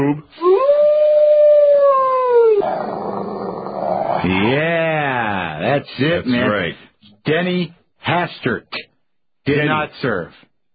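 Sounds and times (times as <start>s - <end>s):
speech: 0.0s - 0.4s, 4.2s - 4.8s, 5.6s - 8.9s, 9.5s - 10.5s
dog howling: 0.4s - 4.2s.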